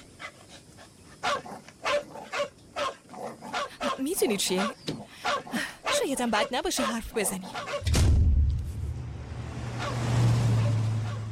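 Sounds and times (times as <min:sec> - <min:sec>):
dog barking: 0:01.2 - 0:07.9, 0:09.8 - 0:11.3
speech: 0:04.0 - 0:08.0.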